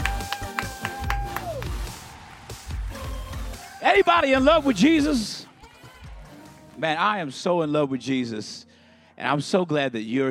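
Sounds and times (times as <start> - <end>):
audience applause: 0.0 - 6.9
speech: 3.9 - 5.4, 6.8 - 10.2.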